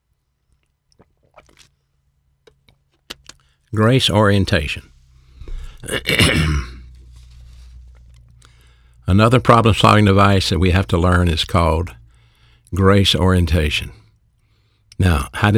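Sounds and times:
person sipping and swallowing water: 0.5 - 3.6, 5.1 - 8.7
speech: 3.7 - 4.9, 5.9 - 6.7, 9.1 - 12.0, 12.7 - 14.0, 15.0 - 15.5
harsh throat clearing: 5.4 - 6.9.

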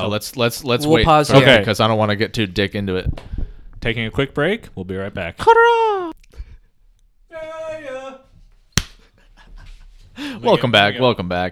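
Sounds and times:
speech: 0.0 - 6.0, 10.4 - 11.4
single hand clap for synchronization: 8.8 - 9.0.

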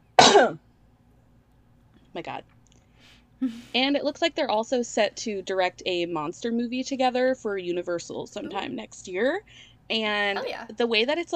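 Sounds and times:
single loud raspy throaty cough: 0.2 - 0.6
speech: 0.4 - 0.6, 2.2 - 2.5, 3.4 - 11.3.

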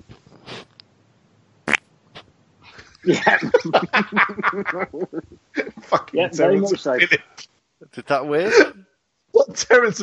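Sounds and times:
fart: 1.6 - 1.9
people laughing: 2.8 - 7.2, 8.4 - 8.8
people chattering: 3.0 - 7.2
speech: 3.0 - 7.3, 8.0 - 10.0.

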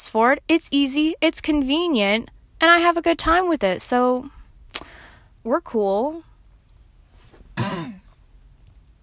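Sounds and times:
speech: 0.0 - 6.3
single short gruff cough: 7.6 - 8.1.

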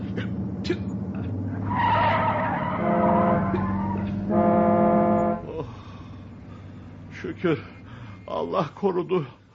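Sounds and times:
speech: 0.7 - 0.9, 7.3 - 9.4
car tires skidding as the car swerves to avoid a bus: 1.2 - 5.4.

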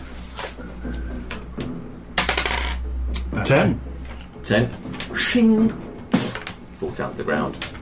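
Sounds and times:
ten-sided dice rolling on a table: 2.2 - 2.8
speech: 3.4 - 3.9, 4.5 - 5.9, 6.8 - 7.7.

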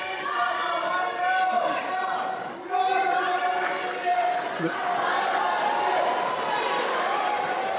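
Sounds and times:
rowdy crowd of protesters shouting and yelling: 0.0 - 7.7
Vice President speaking: 4.6 - 4.8.

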